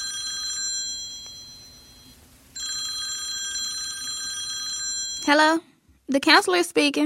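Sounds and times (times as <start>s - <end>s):
telephone ringing with a bright buzzing bell tone: 0.0s - 5.6s
speech: 5.2s - 7.0s.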